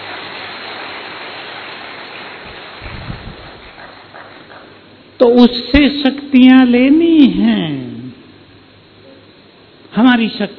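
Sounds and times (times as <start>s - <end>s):
rain falling: 0.0s - 4.5s
wind buffeting the microphone: 2.8s - 3.9s
speech: 5.2s - 7.8s, 10.1s - 10.5s.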